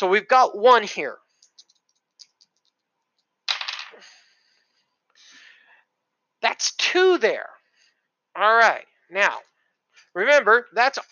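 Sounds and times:
speech: 0.0 - 1.2, 6.4 - 7.6, 8.4 - 9.5, 10.1 - 11.1
two dice rattling and tumbling across a hard tabletop: 1.4 - 4.0.

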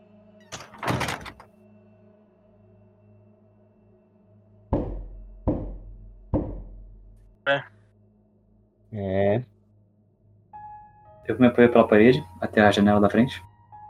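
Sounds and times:
door pushed shut with a rattling thud: 0.5 - 1.5
loud knocking thumps: 4.8 - 6.9
speech: 7.5 - 7.7, 8.9 - 9.5, 11.3 - 13.5.

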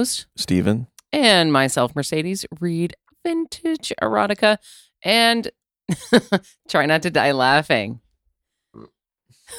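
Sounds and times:
speech: 0.0 - 8.0
burp: 8.7 - 9.0.

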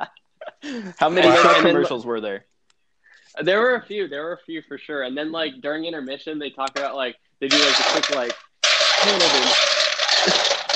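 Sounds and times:
laughter: 0.0 - 2.0
speech: 0.7 - 2.5, 3.4 - 8.4, 9.0 - 10.5
ice being scooped up: 7.5 - 10.7.

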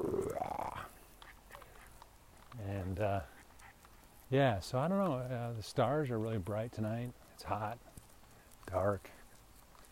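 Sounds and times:
dog growling outdoors on a hot dark night: 0.0 - 1.0
speech: 3.0 - 3.3, 4.3 - 7.9, 8.7 - 9.2.

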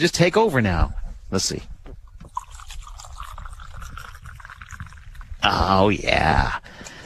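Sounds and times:
speech: 0.0 - 1.8, 5.4 - 6.6
coffee pouring from a big green thermos into a cup on a golf course: 2.1 - 5.7.

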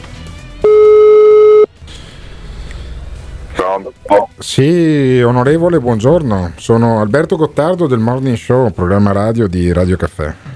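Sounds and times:
telephone ringback tone of an outgoing call: 0.6 - 1.7
speech: 3.8 - 10.5.

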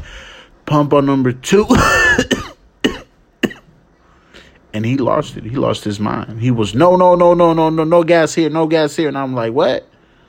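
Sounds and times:
speech: 0.7 - 2.5, 4.8 - 9.9
person coughing harshly: 1.6 - 3.7.

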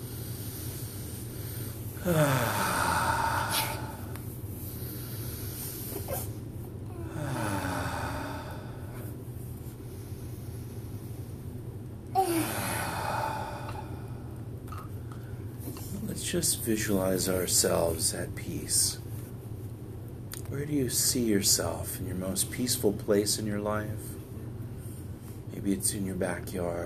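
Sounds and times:
slow deep breathing: 0.0 - 11.5, 12.2 - 16.1
faint steady hum: 0.0 - 26.8
speech: 2.0 - 2.7, 16.3 - 19.0, 20.6 - 24.2, 25.6 - 26.8.

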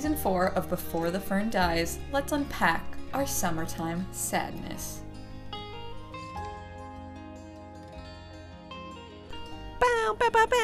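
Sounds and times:
speech: 0.0 - 5.0
voice imitating a basketball game horn: 9.8 - 10.6.

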